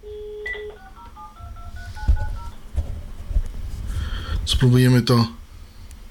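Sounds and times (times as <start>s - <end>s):
phone call tones through a Bluetooth speaker and a handset: 0.0s - 2.6s
speech: 4.5s - 5.4s.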